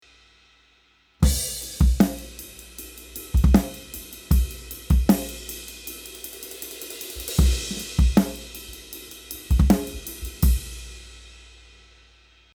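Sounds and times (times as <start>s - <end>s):
snare drum: 1.2s - 10.8s.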